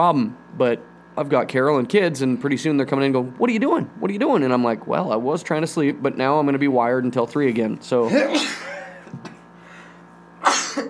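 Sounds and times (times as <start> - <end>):
speech: 0.0 - 9.2
person sneezing: 8.1 - 9.1, 10.4 - 10.8.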